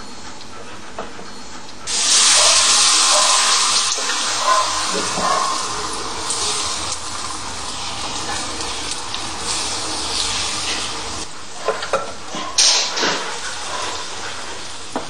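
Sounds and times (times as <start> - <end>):
butter and oil sizzling as they are swirled in a pan: 1.9 - 11.3, 12.6 - 15.0.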